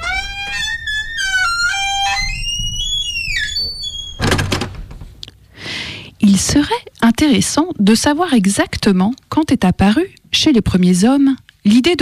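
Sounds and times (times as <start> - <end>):
garden gate creaking on squeaky hinges: 0.0 - 5.2
speech: 6.4 - 12.0.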